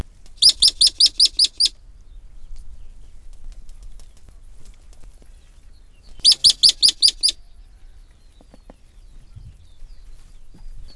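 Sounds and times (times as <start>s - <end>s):
Spermophilus fulvus yellow ground squirrel alarm calls: 0.4s - 1.8s, 6.2s - 7.5s.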